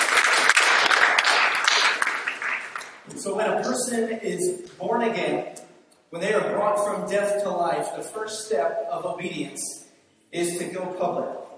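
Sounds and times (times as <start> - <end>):
crowd applauding: 0.0 - 3.0
speech: 3.2 - 11.4.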